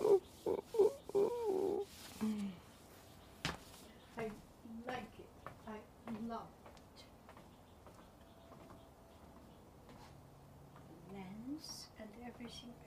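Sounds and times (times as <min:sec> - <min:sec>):
cuckoo-like bird hooting call: 0:00.0 - 0:02.0
rustling: 0:00.0 - 0:04.0.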